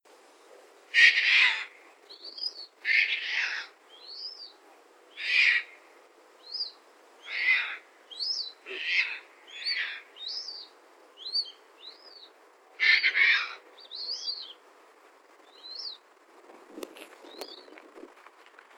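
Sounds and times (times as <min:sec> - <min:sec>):
Caspian tern at Rothsee: 0:01.0 - 0:04.5, 0:05.1 - 0:05.8, 0:06.5 - 0:14.6.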